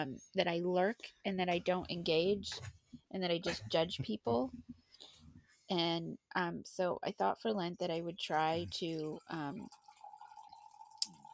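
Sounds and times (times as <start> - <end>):
speech: 0.0 - 4.7, 5.7 - 9.8
coffee being poured: 8.4 - 11.3.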